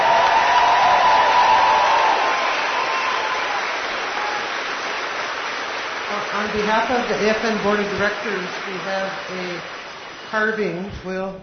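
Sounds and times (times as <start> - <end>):
applause from a large audience: 0.0 - 10.8
speech: 6.5 - 11.4.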